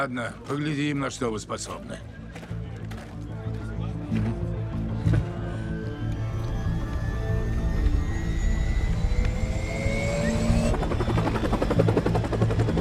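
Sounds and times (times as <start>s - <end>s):
speech: 0.0s - 2.2s
video game helicopter engine hum: 4.1s - 12.7s
video game helicopter in flight, heavy rotor drone: 5.4s - 12.7s
thin whining tones rising in pitch: 6.1s - 12.7s.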